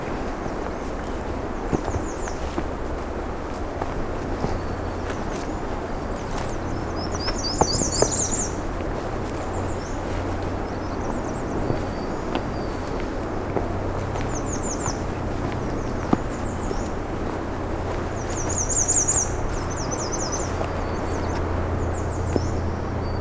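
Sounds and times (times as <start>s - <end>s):
outdoor noise: 0.0s - 23.1s
speech: 1.7s - 2.1s
myrtle warbler singing a thin high trill: 4.2s - 21.4s.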